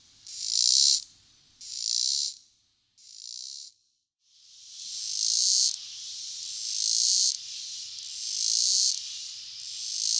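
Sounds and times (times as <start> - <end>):
Robinson's cicada song: 0.2 - 1.0, 1.6 - 2.4, 3.0 - 3.8, 4.4 - 10.1.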